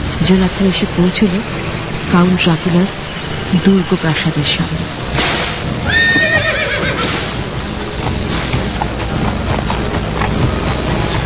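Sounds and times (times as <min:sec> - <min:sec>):
hooves and carriage wheels of a horse-drawn carriage driving off outside a castle: 0:00.0 - 0:11.2
speech: 0:00.3 - 0:05.3
horse whinnying loudly outside a castle: 0:05.8 - 0:07.4.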